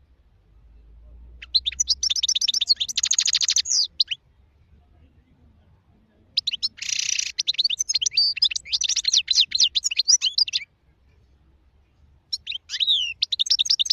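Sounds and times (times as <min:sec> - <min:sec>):
wild European goldfinch song of rapid twitters: 0:01.4 - 0:04.2, 0:06.4 - 0:10.6, 0:12.3 - 0:13.9.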